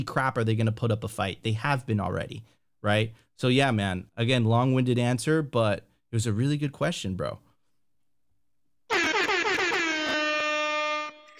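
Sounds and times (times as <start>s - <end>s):
speech: 0.0s - 7.4s
loud air horn blast: 8.9s - 11.3s.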